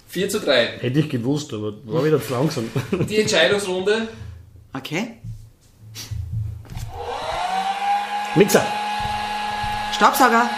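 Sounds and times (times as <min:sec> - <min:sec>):
speech: 0:00.1 - 0:05.3, 0:06.0 - 0:06.2, 0:08.4 - 0:08.8, 0:10.0 - 0:10.5
hair dryer blowing: 0:06.7 - 0:10.5.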